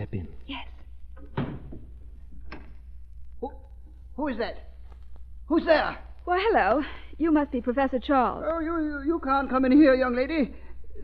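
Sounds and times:
speech: 0:00.1 - 0:00.6, 0:04.2 - 0:04.7, 0:05.5 - 0:11.0
door shutting with a solid thud: 0:01.2 - 0:02.8.

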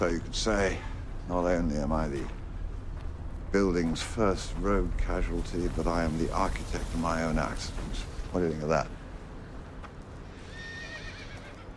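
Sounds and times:
speech: 0:00.0 - 0:02.4, 0:03.5 - 0:09.0
rustling hoof-like noise: 0:00.0 - 0:11.7
horse neighing: 0:10.4 - 0:11.7.

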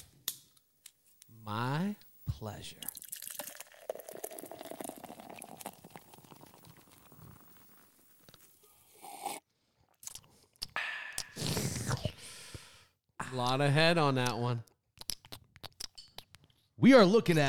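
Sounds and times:
speech: 0:01.5 - 0:03.0, 0:13.3 - 0:14.7, 0:16.8 - 0:17.4
bubbly crackling beer foam fizzing: 0:02.8 - 0:08.3
Baked Pumpkin Ale pouring from a bottle into a glass: 0:02.8 - 0:09.3.

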